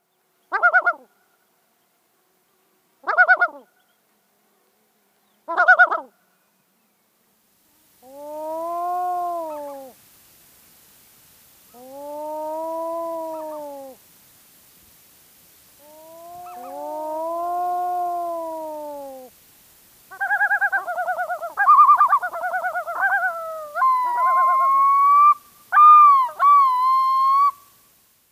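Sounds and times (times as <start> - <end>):
Yellow-billed Loon: 0.5 - 1.1, 3.0 - 3.7, 5.5 - 6.1, 8.0 - 10.0, 11.7 - 14.0, 15.8 - 19.3, 20.1 - 27.6.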